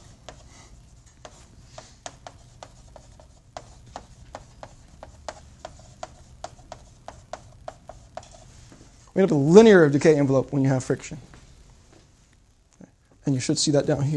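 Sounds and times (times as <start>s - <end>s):
line being drawn on a board: 0.0s - 8.5s
low noise: 0.0s - 14.1s
speech: 9.2s - 11.3s, 13.3s - 14.1s.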